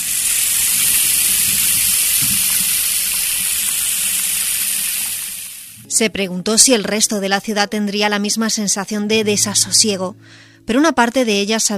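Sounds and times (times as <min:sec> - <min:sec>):
water running from a bathroom tap: 0:00.0 - 0:05.8
speech: 0:06.0 - 0:11.7.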